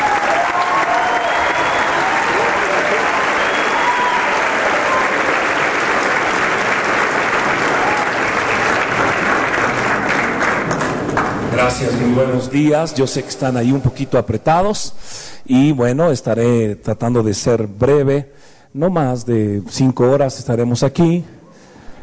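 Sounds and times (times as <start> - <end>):
large audience applauding: 0.0 - 12.1
speech: 11.8 - 21.4.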